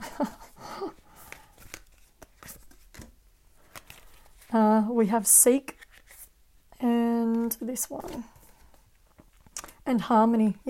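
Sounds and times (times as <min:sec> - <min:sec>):
speech: 0:00.2 - 0:00.4, 0:04.5 - 0:05.8, 0:07.6 - 0:08.4, 0:09.9 - 0:10.6
deck of cards being shuffled: 0:01.0 - 0:04.6, 0:05.7 - 0:06.4, 0:07.3 - 0:09.8.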